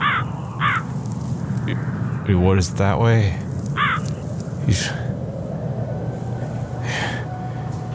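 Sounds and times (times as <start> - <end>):
crow cawing: 0.0 - 1.0, 3.7 - 4.3
steady low rumble of noise: 0.0 - 7.9
speech: 1.7 - 3.4, 4.7 - 5.0.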